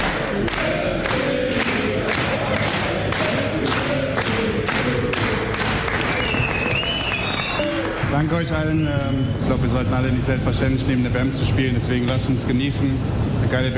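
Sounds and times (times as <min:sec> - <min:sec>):
voices chanting or singing: 0:00.0 - 0:05.9
team clapping rhythmically for a birthday: 0:00.0 - 0:08.7
whistles: 0:06.0 - 0:07.8, 0:08.5 - 0:09.4
speech: 0:08.3 - 0:13.7.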